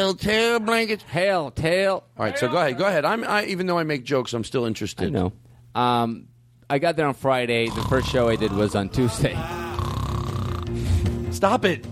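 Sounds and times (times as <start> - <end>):
speech: 0.0 - 9.6, 11.4 - 11.9
snoring sound effect: 7.6 - 9.0, 9.7 - 11.2.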